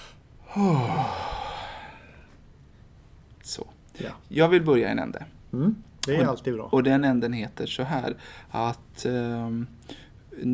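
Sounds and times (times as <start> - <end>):
deep breath as a long voiced sigh: 0.0 - 2.3
speech: 0.6 - 1.2, 4.4 - 10.5.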